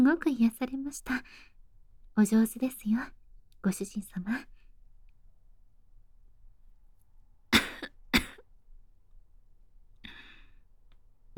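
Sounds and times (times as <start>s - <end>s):
speech: 0.0s - 1.5s, 2.2s - 4.5s
person coughing: 7.6s - 8.4s.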